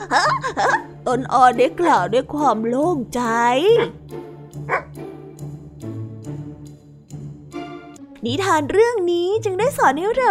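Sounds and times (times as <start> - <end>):
speech: 0.0 - 4.1, 4.7 - 4.9, 8.2 - 10.3
dog barking: 4.6 - 5.0
sharp high dog yelp: 4.7 - 4.9.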